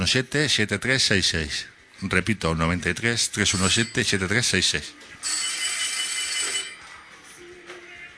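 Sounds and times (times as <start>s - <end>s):
speech: 0.0s - 5.4s
telephone ringing with incoming call: 3.4s - 7.2s.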